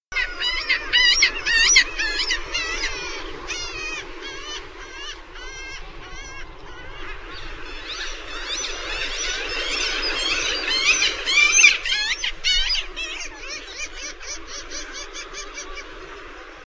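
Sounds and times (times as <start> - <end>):
Red-legged Kittiwake: 0.1 - 16.6.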